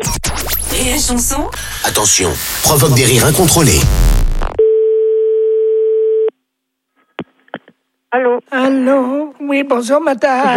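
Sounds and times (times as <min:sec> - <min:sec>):
speech: 0:00.8 - 0:04.2, 0:08.1 - 0:10.5
steady telephone tone from a call not properly hung up: 0:04.6 - 0:06.3.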